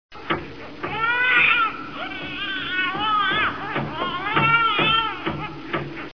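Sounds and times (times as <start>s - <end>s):
baby crying: 0.8s - 5.6s.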